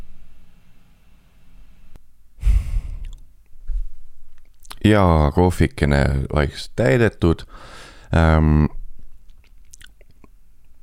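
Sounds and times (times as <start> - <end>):
moist mouth clicks: 3.0 - 3.2, 4.4 - 4.8, 9.2 - 10.8
speech: 4.8 - 8.8
person chewing a small bite of food: 9.2 - 10.3.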